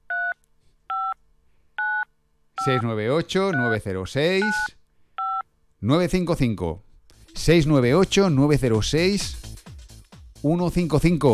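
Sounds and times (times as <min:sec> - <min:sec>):
telephone keypad dialing tones beeping: 0:02.6 - 0:02.8, 0:03.5 - 0:03.8, 0:04.4 - 0:05.4
speech: 0:02.6 - 0:04.8, 0:05.8 - 0:06.8, 0:07.4 - 0:09.4, 0:10.4 - 0:11.3.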